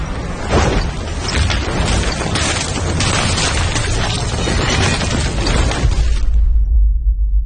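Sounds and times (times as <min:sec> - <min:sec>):
crashing debris: 0:00.1 - 0:06.5
flashlight glass cracking and shattering: 0:00.6 - 0:06.2.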